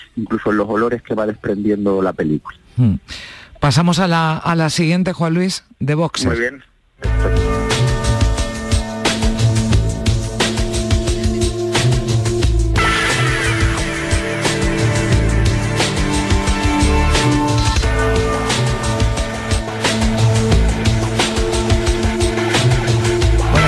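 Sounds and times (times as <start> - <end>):
speech: 0.2 - 7.5
film score with sustained tones over low pulsing bass: 7.0 - 23.6.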